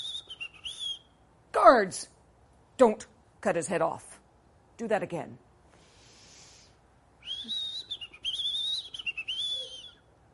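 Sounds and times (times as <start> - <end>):
man whistling a warbling birdlike tune imitating birdsong: 0.0 - 1.2, 7.2 - 10.1
speech: 1.6 - 2.2, 2.8 - 4.1, 4.8 - 5.5.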